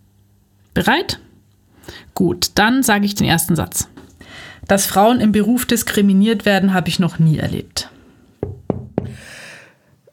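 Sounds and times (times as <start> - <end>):
speech: 0.8 - 1.2, 1.8 - 7.9
sharp knocks on a hard surface: 8.4 - 9.2.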